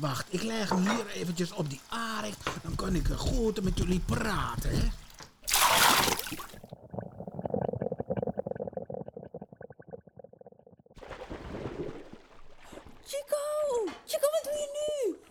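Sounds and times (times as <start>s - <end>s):
speech: 0.0s - 5.0s
microphone splashing into dishwater: 0.0s - 7.1s, 11.0s - 13.1s
sloshing water: 0.0s - 8.5s, 11.0s - 15.2s
bubbling gurgles: 0.0s - 12.0s.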